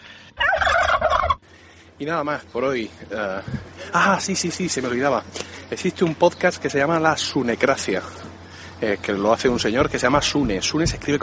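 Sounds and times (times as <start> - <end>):
turkey gobbling: 0.4 - 1.4
speech: 2.0 - 11.2.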